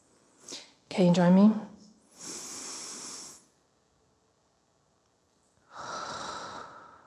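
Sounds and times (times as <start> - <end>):
speech: 1.0 - 1.7
deep breaths in a breathing exercise: 2.1 - 3.5, 5.6 - 7.0.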